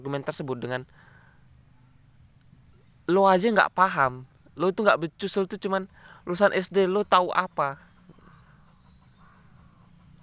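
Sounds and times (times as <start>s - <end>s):
speech: 0.0s - 1.1s, 3.1s - 7.9s
faint crow caws: 7.7s - 10.2s.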